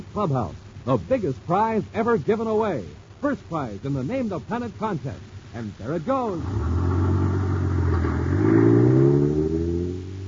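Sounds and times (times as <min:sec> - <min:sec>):
speech: 0:00.2 - 0:07.0
steady road roar: 0:06.3 - 0:10.2
heavy motor truck engine accelerating down highway: 0:06.4 - 0:10.2.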